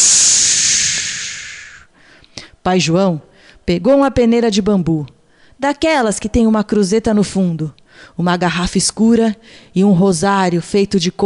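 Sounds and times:
voice imitating a whirlwind blowing with a breathy hiss: 0.0s - 1.9s
speech: 2.6s - 11.2s.

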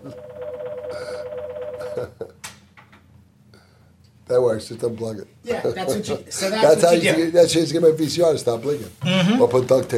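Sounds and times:
phone electronic ringtone: 0.0s - 2.0s
speech: 4.3s - 9.9s.

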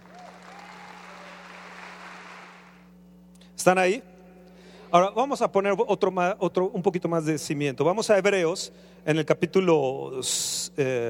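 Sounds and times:
faint whistles or cheers: 0.0s - 2.0s
church audience applauding during a sermon: 0.0s - 2.9s
low steady hum: 0.0s - 11.0s
speech: 3.6s - 4.1s, 4.9s - 11.0s.

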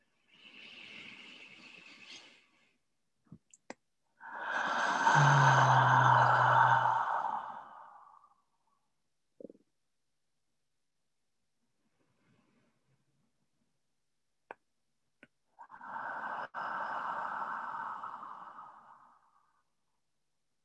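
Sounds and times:
slow deep breathing in a guided relaxation: 4.2s - 8.4s, 15.6s - 19.7s.

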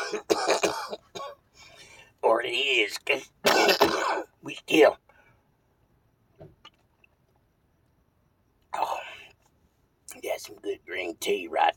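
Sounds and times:
person with a cold coughing harshly: 0.0s - 1.5s, 3.4s - 4.3s
speech: 0.1s - 0.3s, 2.4s - 5.0s, 10.2s - 11.7s.

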